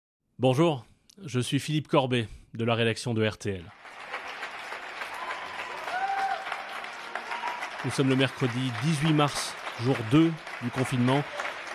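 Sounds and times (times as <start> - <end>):
speech: 0.4 - 4.1, 7.8 - 11.7
people clapping at their windows during coronavirus lockdown in France: 3.7 - 11.7.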